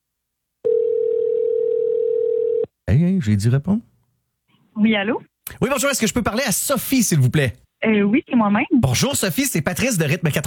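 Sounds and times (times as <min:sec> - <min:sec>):
telephone dial tone while calling someone: 0:00.6 - 0:02.7
speech: 0:02.9 - 0:03.9, 0:04.8 - 0:10.4.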